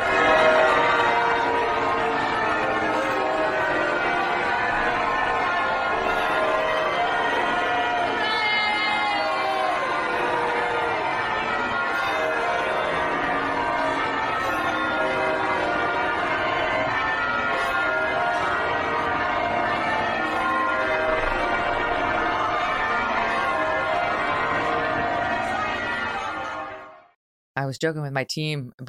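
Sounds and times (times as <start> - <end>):
large outdoor crowd booing and cheering outside cathedral: 0.0 - 26.9
church bells pealing: 0.0 - 27.1
speech: 27.8 - 28.8.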